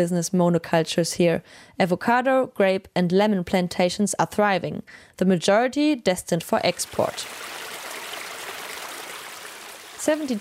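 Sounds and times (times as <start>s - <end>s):
speech: 0.0s - 7.6s, 10.0s - 10.4s
water trickling in a low canal: 6.7s - 10.4s.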